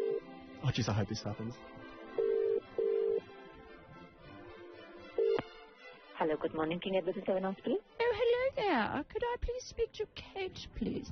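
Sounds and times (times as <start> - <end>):
telephone number being dialed with electronic tone bursts: 0.0 - 0.2, 2.2 - 3.2, 5.2 - 5.5
speech: 0.6 - 2.0, 6.2 - 11.1.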